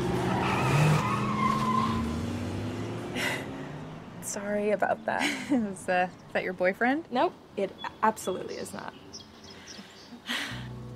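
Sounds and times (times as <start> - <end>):
hot rod tires squealing while pulling away: 0.0 - 4.0
hot rod engine droning: 0.0 - 4.6
speech: 4.4 - 9.1.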